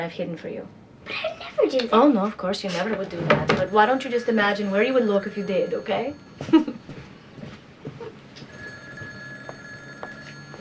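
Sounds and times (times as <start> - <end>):
speech: 0.0 - 6.7
low busy background of rumbling noise: 0.0 - 10.5
telephone ringing with a sustained electronic tone: 3.5 - 10.6.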